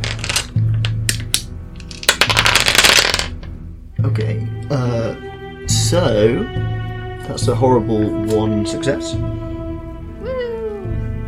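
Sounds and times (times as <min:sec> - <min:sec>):
handful of dice clattering across a hard surface: 0:00.0 - 0:03.5
low steady hum: 0:00.0 - 0:11.2
speech: 0:04.1 - 0:09.4.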